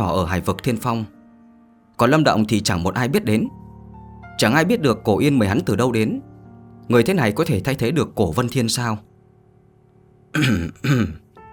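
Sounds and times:
speech: 0:00.1 - 0:01.2, 0:02.0 - 0:03.6, 0:04.4 - 0:06.3, 0:06.9 - 0:09.1, 0:10.3 - 0:11.2
man clearing his throat: 0:10.4 - 0:11.3.

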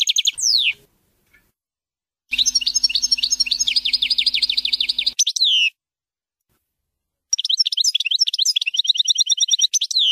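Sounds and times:
European goldfinch song: 0:00.0 - 0:00.9, 0:02.3 - 0:05.8, 0:07.3 - 0:10.1.

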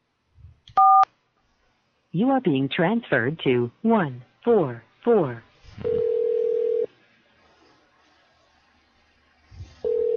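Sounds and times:
touch-tone keypad dialing beep on a hotel phone line: 0:00.8 - 0:01.0
speech: 0:02.1 - 0:06.1
faint low rumble: 0:09.3 - 0:10.0.

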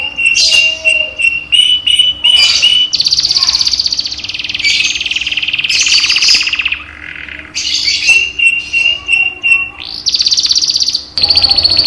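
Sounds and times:
cage canary song: 0:00.0 - 0:11.8.

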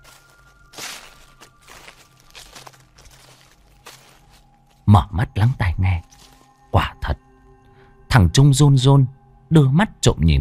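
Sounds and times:
soft footsteps on dry leaves outside: 0:00.0 - 0:04.9, 0:06.0 - 0:06.6
speech: 0:04.9 - 0:06.1, 0:08.2 - 0:10.3.

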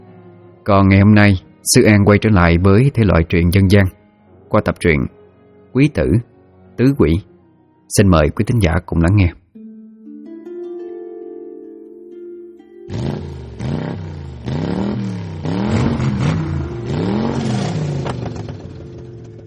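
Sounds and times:
speech: 0:00.7 - 0:07.3, 0:07.9 - 0:09.4
motorcycle exhaust revving late at night in a residential neighbourhood: 0:12.9 - 0:19.4.

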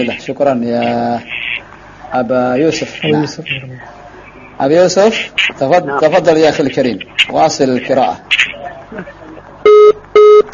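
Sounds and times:
speech: 0:00.0 - 0:01.4, 0:02.1 - 0:04.0, 0:04.6 - 0:10.5
telephone tone beeps as a call drops: 0:09.6 - 0:10.5.

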